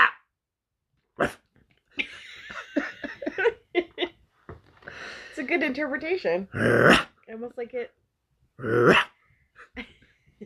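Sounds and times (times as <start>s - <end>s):
person imitating a snarling rabid dog barking: 0.0s - 0.2s, 6.6s - 7.1s, 8.6s - 9.1s
speech: 1.2s - 1.4s, 5.4s - 8.0s, 8.6s - 9.0s.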